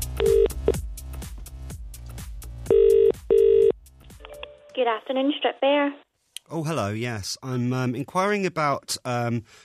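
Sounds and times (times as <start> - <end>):
telephone ringing tone on outgoing call: 0.2 - 0.8, 2.7 - 3.8
speech: 4.9 - 9.6.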